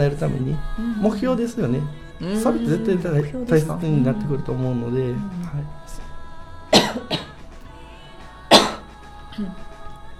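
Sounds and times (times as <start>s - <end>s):
speech: 0.0s - 6.0s, 9.4s - 9.7s
person choking and coughing mid-conversation: 6.8s - 7.3s, 8.5s - 8.8s.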